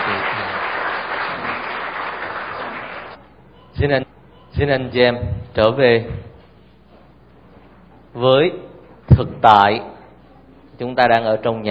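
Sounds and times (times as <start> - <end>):
crowd clapping: 0.0 - 3.2
speech: 3.8 - 4.0, 4.6 - 6.3, 8.2 - 9.9, 10.8 - 11.7.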